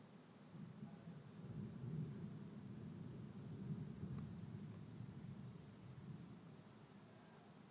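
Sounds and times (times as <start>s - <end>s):
rolling thunder from a thunderstorm: 0.6s - 6.4s.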